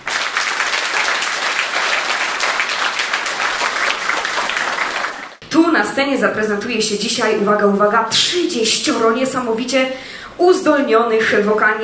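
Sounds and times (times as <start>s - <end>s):
dense applause from a large concert audience: 0.0s - 5.4s
speech: 5.6s - 11.8s.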